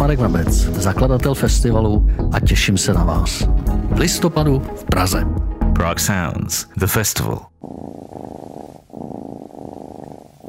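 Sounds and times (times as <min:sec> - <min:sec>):
speech: 0:00.1 - 0:07.9
domestic cat purring: 0:07.6 - 0:10.4.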